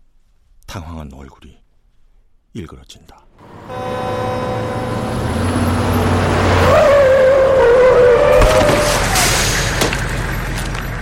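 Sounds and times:
speech: 0.8s - 1.6s, 2.5s - 4.4s
heavy truck roaring in with a loud engine rumble: 3.4s - 10.9s
truck tires letting out a long squealing skid: 4.8s - 10.9s.

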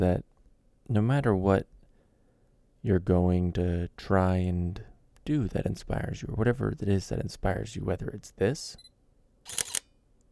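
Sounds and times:
speech: 0.0s - 0.3s, 0.9s - 1.8s, 2.8s - 8.9s, 9.5s - 9.8s
camera powering on with a mechanical whir-click: 9.5s - 9.9s.

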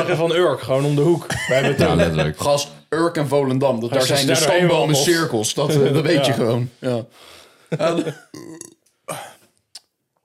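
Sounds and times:
speech: 0.0s - 9.3s
laughter: 1.2s - 2.7s, 7.7s - 8.4s
loud drawn-out burp: 8.2s - 9.4s.

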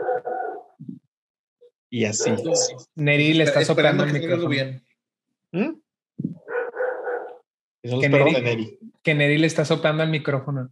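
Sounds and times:
dog barking: 0.0s - 0.8s, 2.1s - 2.8s, 6.4s - 7.5s
speech: 1.9s - 4.8s, 5.5s - 5.8s, 7.8s - 10.7s.

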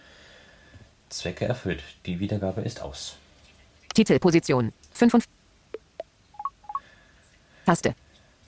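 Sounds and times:
speech: 1.1s - 3.2s, 4.0s - 5.4s, 7.7s - 8.0s
phone keypad beeps entering an unlock passcode: 5.8s - 6.8s.

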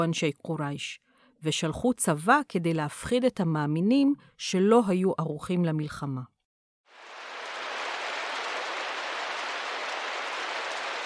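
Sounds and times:
speech: 0.0s - 6.3s
light rain dripping: 6.9s - 11.0s.

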